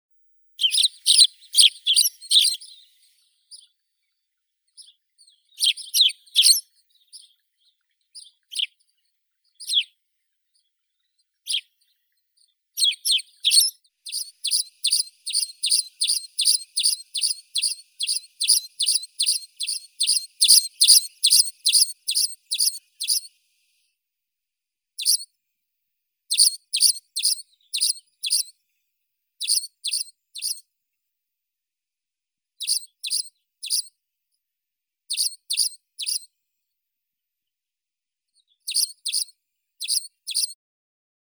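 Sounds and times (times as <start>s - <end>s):
Spanish sparrow Passer hispaniolensis chirping: 0.6s - 23.4s, 25.0s - 25.2s, 26.3s - 28.5s, 29.4s - 30.6s, 32.6s - 33.9s, 35.1s - 36.3s, 38.4s - 40.6s.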